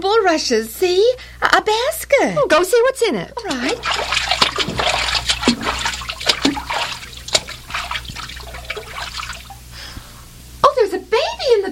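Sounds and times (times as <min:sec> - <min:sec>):
speech: 0:00.2 - 0:04.3
water sloshing and splashing as someone wades through a cold river: 0:03.4 - 0:09.8.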